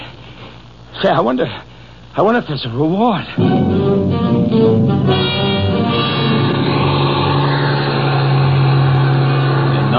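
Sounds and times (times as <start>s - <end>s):
speech: 1.0s - 5.5s
heavy bus engine revving on snow-covered mountain roads: 4.2s - 9.9s.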